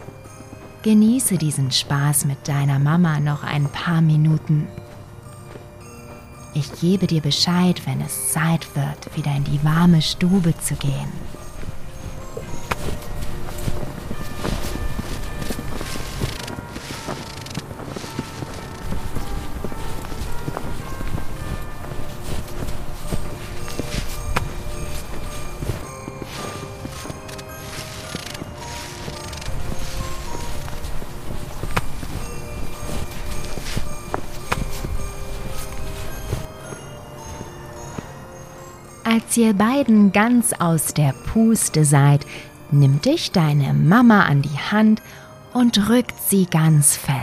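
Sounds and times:
footsteps of two people running around outdoors on a winter evening: 0.0s - 1.1s, 10.8s - 38.3s
music: 0.0s - 47.2s
speech: 0.8s - 4.8s, 6.6s - 11.4s, 39.4s - 47.2s.

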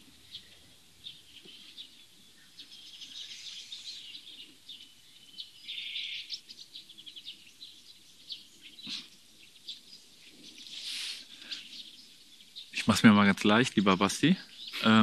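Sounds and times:
bird singing outdoors: 0.0s - 15.0s
speech: 12.9s - 15.0s.

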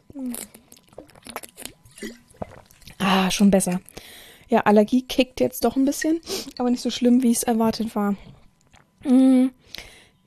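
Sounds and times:
person sipping water with slurps and gulps: 0.1s - 3.0s, 8.3s - 9.1s
speech: 2.0s - 2.2s, 3.1s - 3.9s, 4.6s - 8.3s, 9.0s - 9.8s.

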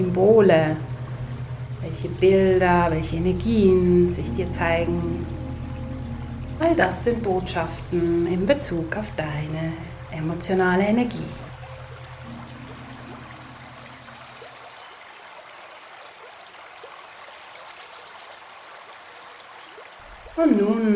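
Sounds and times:
speech: 0.0s - 0.9s, 1.8s - 5.4s, 6.6s - 11.4s
low humming tone: 0.0s - 15.0s
flowing river stream: 0.0s - 20.9s.

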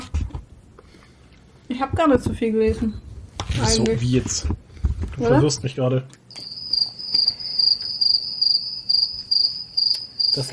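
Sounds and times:
speech: 1.7s - 4.6s, 5.2s - 6.2s, 10.4s - 10.5s
cricket chirping in rhythmic pulsing bursts: 6.3s - 10.5s.

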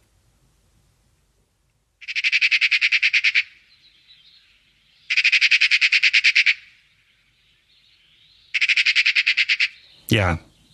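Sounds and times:
Eurasian magpie chattering: 2.0s - 3.6s, 5.1s - 6.6s, 8.5s - 9.8s
speech: 10.1s - 10.5s.

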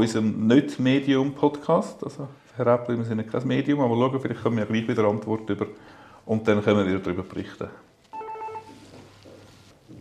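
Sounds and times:
speech: 0.0s - 7.9s
quiet room noise: 0.0s - 9.9s
phone ringing with a bright electronic tone: 8.1s - 9.0s.

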